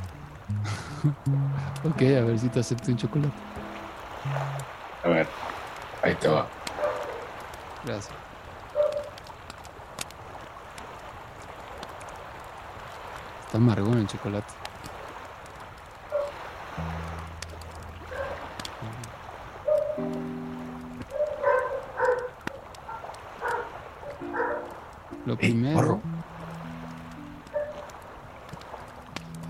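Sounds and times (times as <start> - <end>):
laughter: 0.5 - 1.9, 25.4 - 26.0
speech: 1.0 - 6.6, 7.8 - 8.2, 13.5 - 14.6, 25.4 - 26.1
dogs barking: 6.6 - 7.5, 8.7 - 9.3, 16.0 - 16.8, 17.8 - 25.2, 27.1 - 28.2
voices: 25.3 - 26.0.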